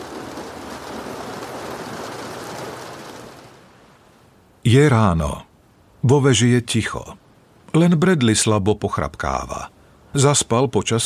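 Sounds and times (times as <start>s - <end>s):
rain drumming on polished glass: 0.0s - 4.6s
speech: 4.7s - 11.0s.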